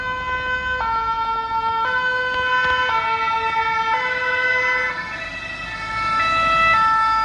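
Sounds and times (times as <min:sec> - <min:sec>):
emergency vehicle sirens wailing in two-tone pattern: 0:00.0 - 0:07.2
road traffic rumbling: 0:00.0 - 0:07.2.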